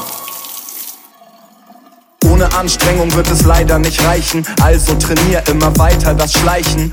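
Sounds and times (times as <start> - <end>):
water running from a tap: 0.0 - 1.2
speech: 2.4 - 6.9.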